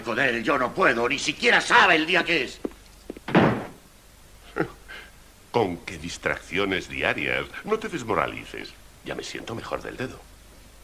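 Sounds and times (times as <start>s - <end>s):
speech: 0.0s - 2.7s, 5.5s - 10.3s
low hum: 0.0s - 10.8s
soft thump: 3.2s - 3.8s
door slamming shut: 3.3s - 3.8s.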